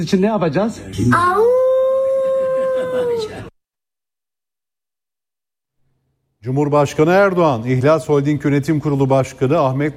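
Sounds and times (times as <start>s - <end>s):
speech: 0.0s - 1.6s, 2.9s - 3.5s, 6.4s - 9.9s
child howling like a wolf: 1.1s - 3.5s.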